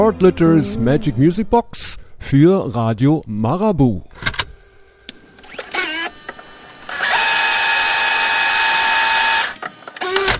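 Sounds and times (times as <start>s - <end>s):
speech: 0.0s - 4.3s
cassette tape rewinding in a cassette player: 5.1s - 10.3s.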